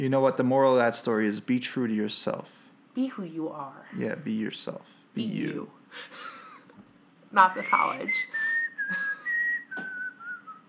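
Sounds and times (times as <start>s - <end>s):
speech: 0.0s - 6.4s, 7.3s - 9.1s
person whistling a wavering tune: 7.5s - 10.6s.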